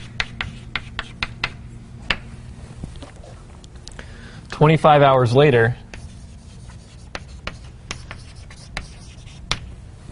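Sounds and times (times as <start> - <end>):
speech: 4.6 - 5.8
pen or pencil writing on paper: 6.0 - 9.4.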